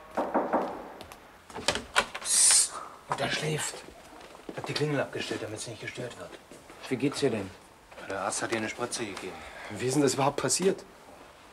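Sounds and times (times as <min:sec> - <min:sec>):
knocking on a door: 0:00.1 - 0:01.1
speech: 0:03.2 - 0:04.0, 0:04.6 - 0:11.0.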